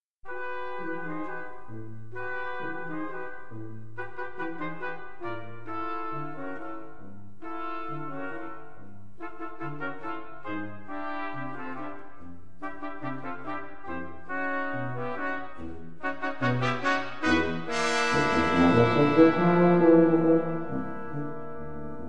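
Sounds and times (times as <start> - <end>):
brass instruments: 0.2 - 22.0.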